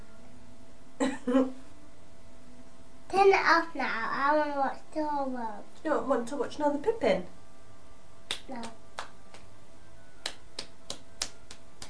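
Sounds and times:
speech: 1.3 - 1.6, 3.5 - 7.4, 8.5 - 8.8
light hand claps: 8.3 - 9.5, 10.2 - 11.8.

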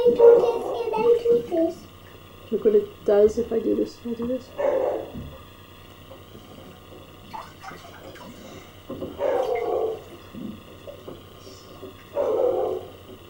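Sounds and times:
dog barking: 0.2 - 0.9, 4.6 - 5.2, 9.2 - 10.1, 12.1 - 13.0
speech: 2.6 - 5.3.

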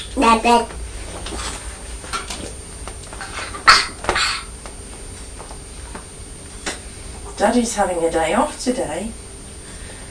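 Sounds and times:
speech: 0.2 - 0.8, 7.4 - 9.2
small boy coughing: 3.3 - 4.6.

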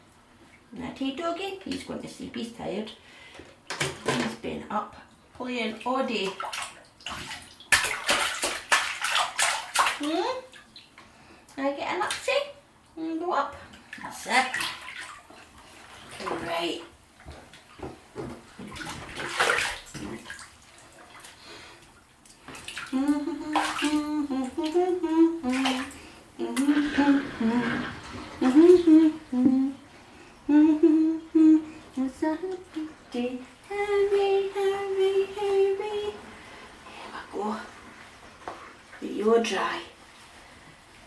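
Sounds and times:
speech: 0.7 - 7.4, 10.0 - 10.4, 11.6 - 14.7, 16.2 - 16.9, 22.9 - 29.7, 32.3 - 35.4, 39.2 - 39.9
bath water rushing and gurgling out of a tub: 5.2 - 11.2, 13.6 - 35.5.

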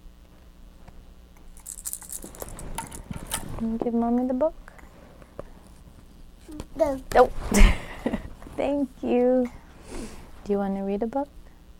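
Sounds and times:
keys jangling and clinking: 1.6 - 3.6
speech: 3.6 - 4.6, 6.8 - 7.8, 8.6 - 11.4.

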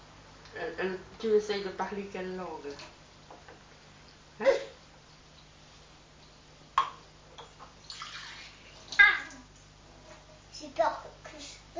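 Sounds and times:
speech: 0.6 - 3.0
water sloshing and splashing in a bathtub: 6.8 - 9.7.

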